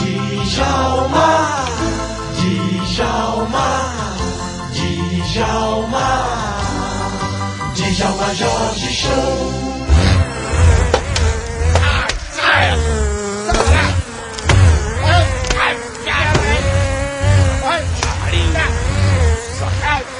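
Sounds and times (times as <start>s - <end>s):
swarm of bees buzzing: 0.0s - 20.1s
speech: 8.0s - 9.7s.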